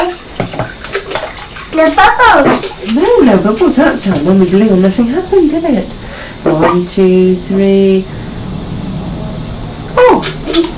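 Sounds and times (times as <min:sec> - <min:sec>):
continuous rushing water in a bathtub: 0:00.0 - 0:04.8
young child splashing water in a bathtub: 0:00.0 - 0:04.8, 0:10.1 - 0:10.7
speech: 0:01.8 - 0:08.2.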